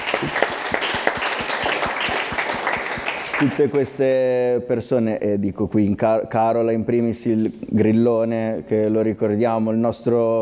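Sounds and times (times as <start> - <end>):
crowd applauding: 0.0 - 4.0
speech: 0.2 - 0.5, 3.4 - 10.4.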